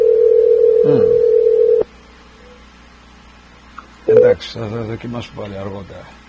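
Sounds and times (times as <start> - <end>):
telephone dial tone of an unanswered call: 0.0 - 1.9, 4.1 - 4.4
speech: 0.8 - 1.2, 4.3 - 6.2.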